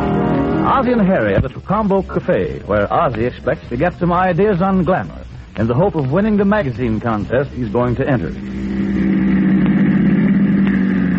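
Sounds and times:
taxi cab engine running as the car pulls up: 0.0s - 1.6s, 6.7s - 11.1s
speech: 0.8s - 9.0s.

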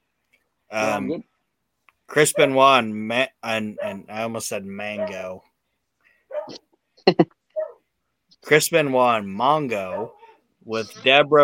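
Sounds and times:
speech: 0.7s - 1.3s, 2.1s - 5.5s, 6.5s - 7.4s, 8.4s - 11.4s
dog whining excitedly: 6.3s - 6.6s, 7.5s - 7.8s, 9.9s - 10.4s.

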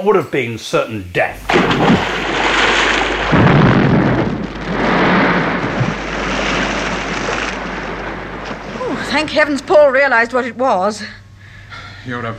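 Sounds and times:
speech: 0.0s - 2.1s, 9.2s - 11.2s, 12.0s - 12.3s
bomb explosion: 1.4s - 10.4s.

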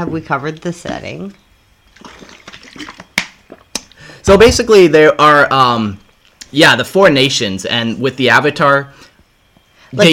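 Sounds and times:
speech: 0.0s - 1.4s, 4.3s - 9.0s, 9.9s - 10.1s
water sloshing in a container as it is passed over: 1.9s - 3.7s.

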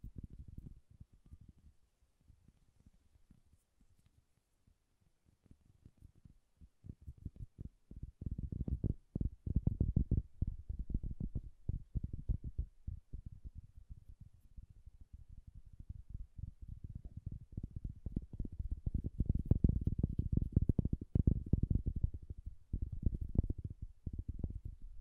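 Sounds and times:
soft bassy tapping: 7.0s - 13.6s, 17.0s - 25.0s.

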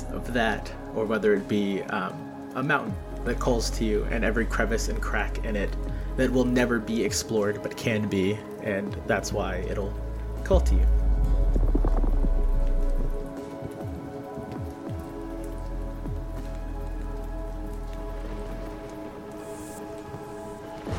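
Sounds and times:
steady rain pattering onto a surface: 0.0s - 20.9s
speech: 0.2s - 11.4s
low rumble: 10.1s - 13.4s.

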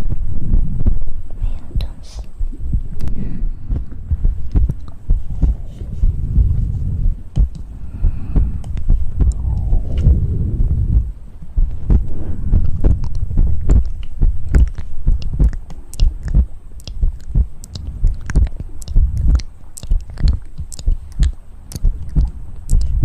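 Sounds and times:
low muffled rumble: 0.0s - 23.0s
wet mouth clicks, smacks and lip pops: 1.8s - 23.0s
soft breathy swell: 5.2s - 13.2s.

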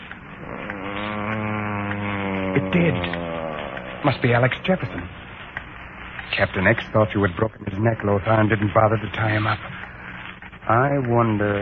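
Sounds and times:
man groaning in the next room: 0.4s - 5.1s
speech: 2.6s - 3.2s, 4.0s - 5.2s, 6.3s - 9.7s, 10.7s - 11.5s.

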